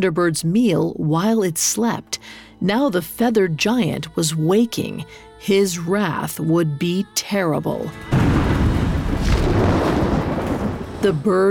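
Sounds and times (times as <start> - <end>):
speech: 0.0 - 8.4, 11.0 - 11.4
crash of thunder: 8.1 - 11.3.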